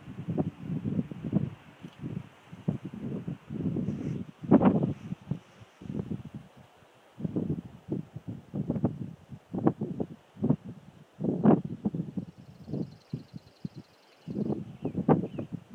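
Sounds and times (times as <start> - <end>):
wind gusts through forest on a hill: 0.0 - 15.7
faint high bird trill: 12.4 - 15.5.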